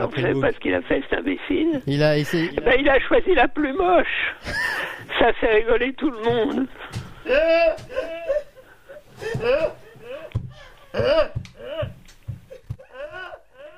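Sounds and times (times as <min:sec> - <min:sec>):
speech: 0:00.0 - 0:08.1, 0:09.4 - 0:09.8, 0:11.0 - 0:11.4
laughter: 0:04.4 - 0:05.1, 0:06.2 - 0:13.4
person imitating a goat bleating: 0:10.9 - 0:12.0.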